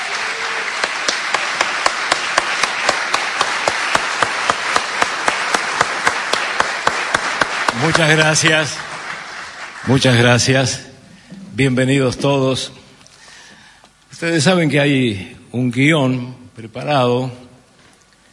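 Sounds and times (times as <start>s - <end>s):
rhythmic clapping in unison: 0.0s - 10.4s
audience applause welcoming a guest: 0.0s - 10.7s
speech: 7.8s - 8.9s, 9.8s - 10.9s, 11.6s - 12.8s, 14.2s - 17.4s.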